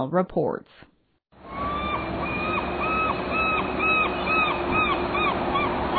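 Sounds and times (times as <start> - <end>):
speech: 0.0 - 0.9
low rumble of city noise in downtown Seattle: 1.4 - 5.9
seagulls calling overhead: 1.4 - 5.9.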